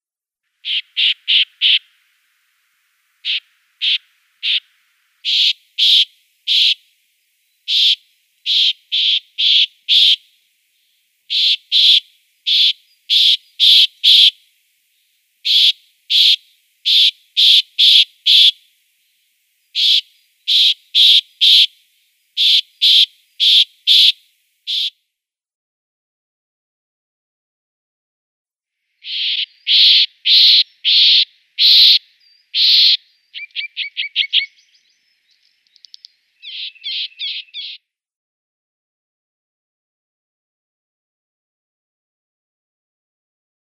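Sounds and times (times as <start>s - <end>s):
Corsican nuthatch singing: 0.6s - 1.9s, 3.2s - 6.8s, 7.5s - 10.2s, 11.3s - 14.3s, 15.5s - 18.5s, 19.7s - 21.7s, 22.4s - 24.1s, 24.7s - 24.9s, 29.0s - 37.8s.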